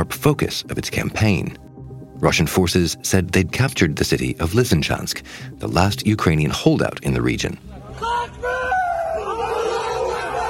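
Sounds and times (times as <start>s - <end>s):
speech: 0.0s - 1.6s, 2.2s - 8.5s
group of men shouting in celebration: 7.8s - 10.4s.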